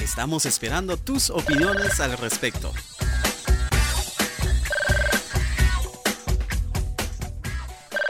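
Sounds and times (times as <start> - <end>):
punchy rhythmic music bed with heavy beats: 0.0 - 8.0
speech: 0.1 - 3.2
telephone ringing for incoming call: 1.4 - 2.3, 4.3 - 5.6.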